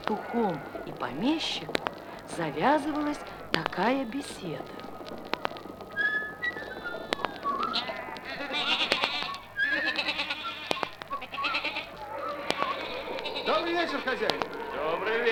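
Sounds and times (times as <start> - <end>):
flock of sheep bleating: 0.0 - 1.5, 6.9 - 15.3
sharp clicks: 0.0 - 14.9
speech: 0.1 - 5.4, 13.8 - 15.3
whistle-like tone: 5.9 - 8.1, 8.7 - 12.9.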